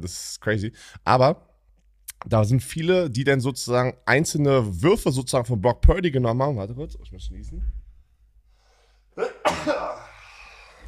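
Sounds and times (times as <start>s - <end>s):
speech: 0.0s - 1.5s, 2.2s - 7.8s, 9.2s - 10.0s
sneeze: 9.2s - 10.8s.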